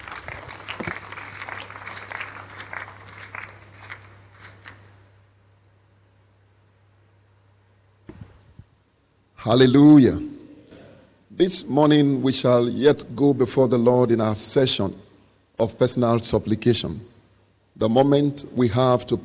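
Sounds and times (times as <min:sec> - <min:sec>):
audience clapping: 0:00.0 - 0:05.0
speech: 0:09.5 - 0:10.3, 0:11.4 - 0:17.2, 0:17.8 - 0:19.2.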